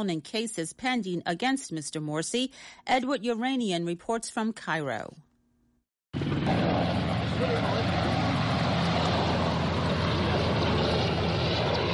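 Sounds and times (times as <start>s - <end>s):
speech: 0.0s - 5.3s
military helicopter taking off: 6.2s - 11.9s.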